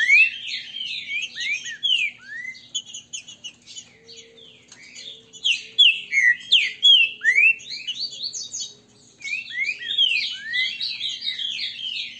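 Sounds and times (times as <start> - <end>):
Green-winged saltator song: 0.0 - 12.1.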